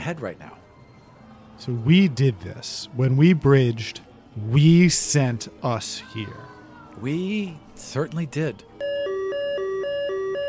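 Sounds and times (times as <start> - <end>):
speech: 0.0 - 0.6, 1.6 - 8.8
two-tone electronic alarm blaring: 8.8 - 10.4.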